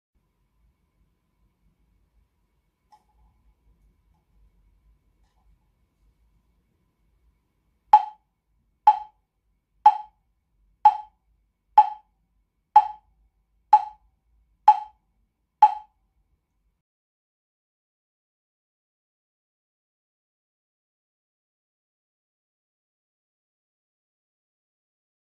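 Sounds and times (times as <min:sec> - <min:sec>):
wooden fish: 0:08.0 - 0:08.2, 0:08.9 - 0:09.1, 0:09.9 - 0:10.1, 0:10.9 - 0:11.1, 0:11.8 - 0:12.0, 0:12.8 - 0:13.0, 0:13.8 - 0:14.0, 0:14.7 - 0:15.0, 0:15.6 - 0:15.9.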